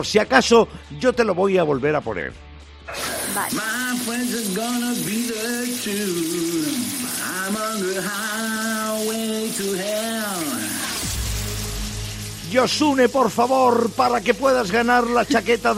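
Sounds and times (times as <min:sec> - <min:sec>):
speech: 0:00.0 - 0:10.7, 0:12.5 - 0:15.7
person singing a sustained wavering melody: 0:02.9 - 0:10.8
steady hiss of running shower water: 0:02.9 - 0:15.7.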